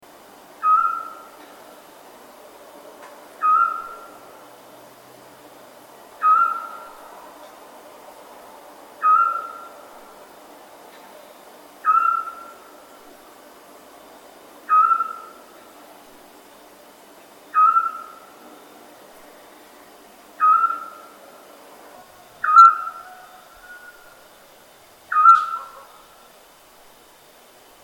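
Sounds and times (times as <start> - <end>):
owl hooting at night as a ringtone: 0.6 - 1.4, 3.4 - 4.3, 6.2 - 7.1, 9.0 - 10.0, 11.8 - 12.8, 14.7 - 15.5, 17.5 - 18.4, 20.4 - 21.2, 22.2 - 24.3, 25.1 - 26.3.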